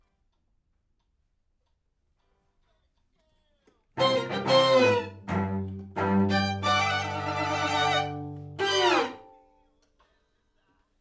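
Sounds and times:
piano: 4.0 - 9.3
main strings with piano: 4.0 - 9.4.

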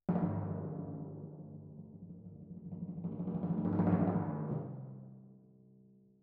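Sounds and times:
timpani: 0.1 - 5.0.

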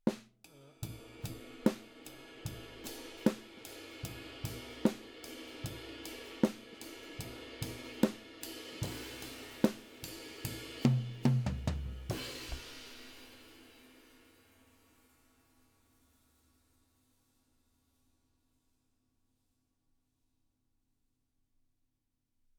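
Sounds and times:
drums: 0.0 - 18.2.

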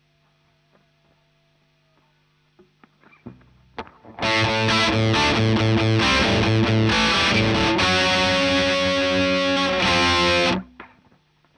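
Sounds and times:
Marshal electric guitar: 3.2 - 10.9.

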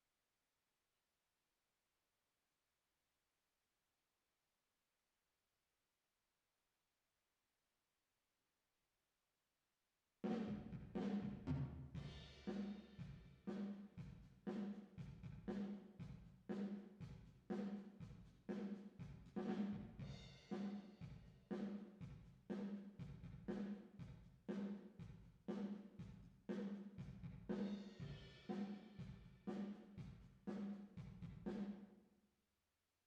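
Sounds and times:
drum with reverb: 10.2 - 31.8.

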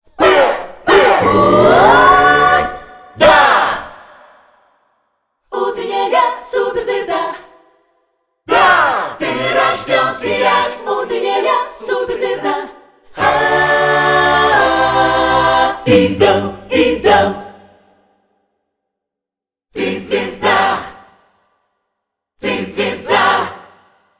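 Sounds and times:
choirs singing: 0.1 - 4.5, 5.5 - 7.6, 8.5 - 18.0, 19.8 - 21.3, 22.4 - 24.0.

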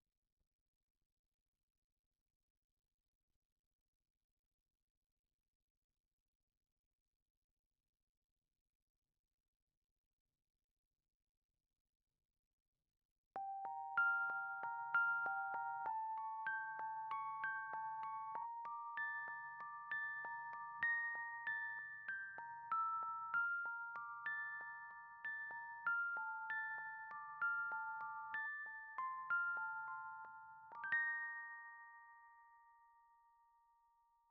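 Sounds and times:
Rhodes electric piano: 13.4 - 32.8.

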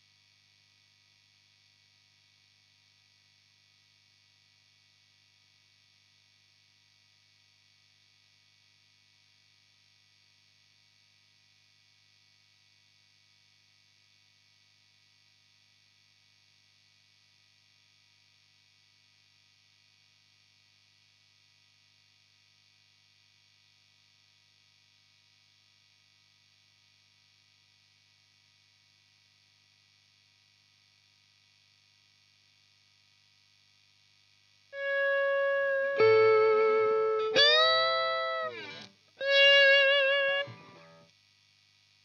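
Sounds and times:
electric guitar amp solo: 34.8 - 41.0.

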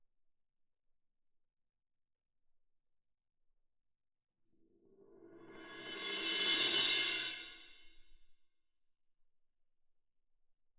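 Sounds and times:
cymbal: 5.1 - 8.0.

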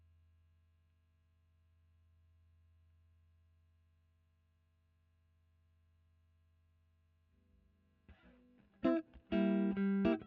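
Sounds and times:
electric guitar: 8.1 - 10.2.

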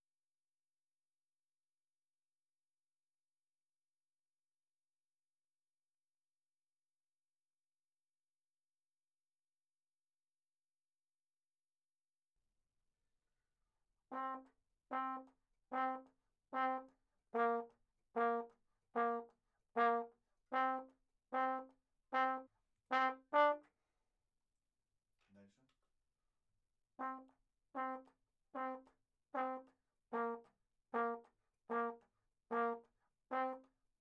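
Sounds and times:
ragtime trombone: 14.1 - 23.7, 27.0 - 33.7.

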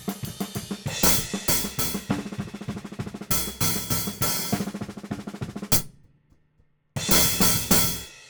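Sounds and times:
hi-hat: 0.1 - 4.8, 5.7 - 5.9, 7.1 - 8.2.

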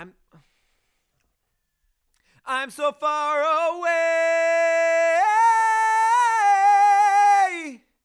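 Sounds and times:
chorus singing: 2.7 - 7.8.

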